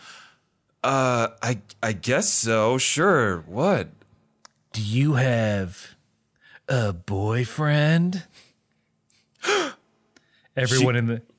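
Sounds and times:
speech: 0.8s - 4.0s, 4.7s - 6.0s, 6.7s - 8.4s, 10.6s - 11.3s
voice imitating a classroom full of people gasping: 9.4s - 9.8s.

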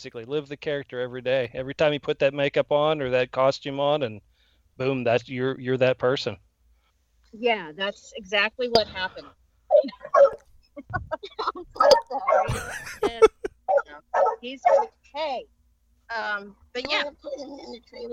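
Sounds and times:
speech: 0.0s - 6.5s, 7.3s - 18.1s
circus dog barking: 10.0s - 10.4s, 11.8s - 12.8s, 13.7s - 15.0s
laughter: 10.8s - 13.5s.

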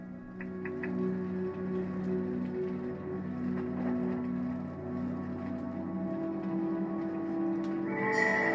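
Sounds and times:
soft sustained video game music: 0.0s - 8.5s
video game musical chimes played by pressing the circle button: 7.9s - 8.5s.

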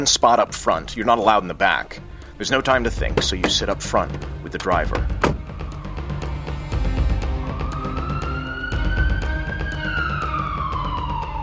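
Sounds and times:
speech: 0.0s - 5.2s
regular ticking: 2.0s - 5.6s
ambulance siren wailing: 4.4s - 11.4s.

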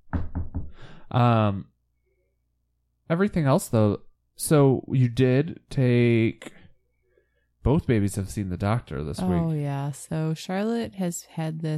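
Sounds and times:
knocking on wood: 0.0s - 0.8s
speech: 1.1s - 1.7s, 3.1s - 6.6s, 7.6s - 11.7s
person making a sustained voiced sound: 9.2s - 9.5s.

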